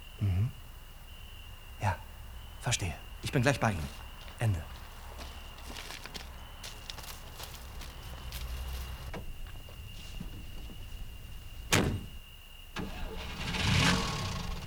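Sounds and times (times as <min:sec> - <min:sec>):
steady hum: 0:00.0 - 0:14.6
speech: 0:02.7 - 0:04.7
car door shutting: 0:11.7 - 0:12.2
car engine cranking and idling: 0:12.8 - 0:14.6.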